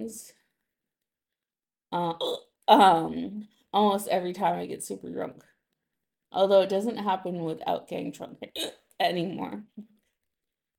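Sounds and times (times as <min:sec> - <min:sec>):
speech: 0:00.0 - 0:00.4, 0:01.9 - 0:05.5, 0:06.3 - 0:09.9
hiccups from a drunk person: 0:08.6 - 0:08.8.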